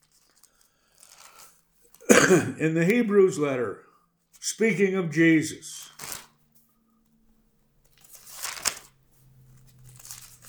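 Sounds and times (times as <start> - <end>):
book pages turned by hand: 0.0 - 1.6, 5.8 - 6.3, 7.9 - 10.4
sharp crinkle of book pages: 0.0 - 2.0, 5.8 - 6.4, 7.8 - 10.4
speech: 2.3 - 5.8.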